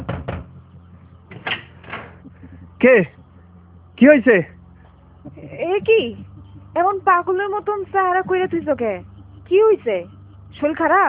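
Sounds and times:
wooden door being opened with clunks and rattles: 0.0 - 0.6, 1.3 - 2.6
speech: 2.8 - 3.2, 4.0 - 4.6, 5.2 - 11.0.

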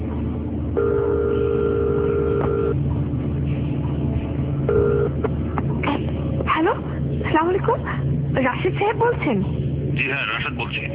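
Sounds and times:
low hum: 0.0 - 10.9
telephone call ringback tones: 0.8 - 2.8, 4.7 - 5.2
speech: 8.6 - 10.9.

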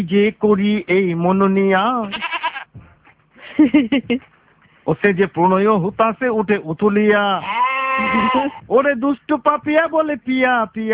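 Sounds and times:
speech: 0.0 - 2.9, 3.6 - 10.9
goats bleating: 2.0 - 2.7, 7.4 - 8.7.

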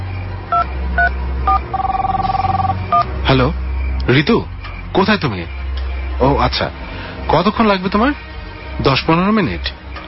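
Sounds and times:
rapid run of short pulsing telephone beeps: 0.5 - 3.1
telephone keypad tones: 0.5 - 3.1
speech: 3.3 - 5.6, 6.2 - 9.8.

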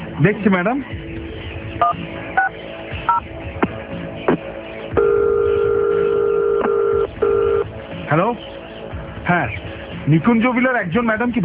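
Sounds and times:
speech: 0.2 - 1.1, 1.8 - 3.6, 8.1 - 8.5, 9.3 - 11.4
long steady telephone line tone as the line connects: 5.0 - 7.6.

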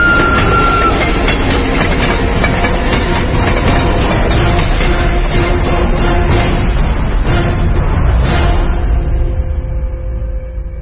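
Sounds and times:
train wheels clattering on rails: 0.0 - 7.2
strong stormy wind: 0.0 - 10.8
train passing close by with loud continuous rumble: 0.0 - 10.8.

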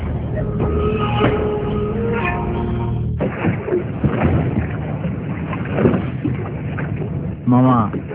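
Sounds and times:
engine humming: 0.0 - 4.0
boat moving on water at night: 0.0 - 8.1.

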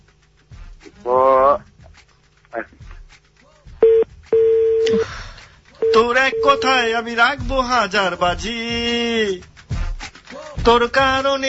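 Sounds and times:
telephone sounding in flat electronic tones: 3.8 - 5.0, 5.8 - 6.8
speech: 6.3 - 9.5, 10.6 - 11.4.

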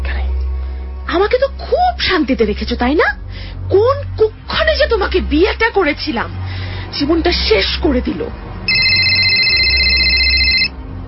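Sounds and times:
speech: 1.1 - 8.5
quiet room hum: 8.7 - 10.7
telephone ringing indoors: 8.7 - 10.8.

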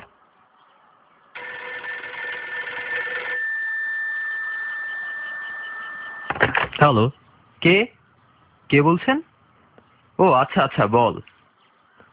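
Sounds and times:
landline telephone ringing over a poor unclear line: 1.4 - 6.7
speech: 6.8 - 8.0, 8.7 - 9.3, 10.2 - 11.3.

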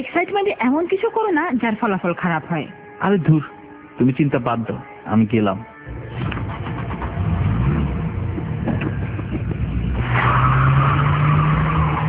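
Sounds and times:
speech: 0.0 - 5.7
car speeding at night, engine roaring: 5.9 - 12.0.

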